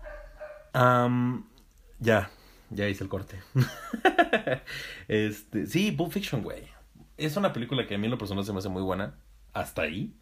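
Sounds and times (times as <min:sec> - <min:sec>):
household dog barking: 0:00.0 - 0:00.8
speech: 0:00.8 - 0:10.2
laughter: 0:03.6 - 0:04.6.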